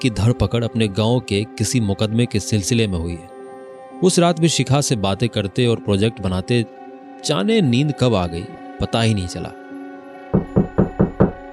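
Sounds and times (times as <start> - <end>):
speech: 0.0 - 3.3, 4.0 - 9.6
loud knocking on a wooden door: 10.3 - 11.5.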